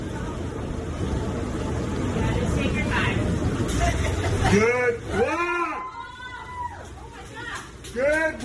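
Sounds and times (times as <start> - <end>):
low bus engine rumble: 0.0 - 8.4
bus passengers cheering and whooping in a flooded street: 4.5 - 8.4.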